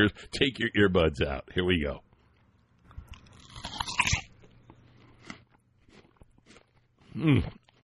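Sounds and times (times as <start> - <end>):
speech: 0.0 - 2.0, 7.2 - 7.6
chewing apple: 2.1 - 7.8
teeth biting into a firm crisp new-crop apple: 2.9 - 7.8.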